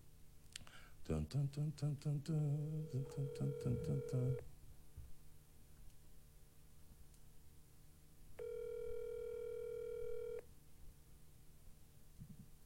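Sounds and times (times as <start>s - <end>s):
faint low hum: 0.0s - 12.6s
speech: 1.1s - 4.5s
electronic ringing tone of an outgoing phone call: 2.8s - 4.4s, 8.4s - 10.4s.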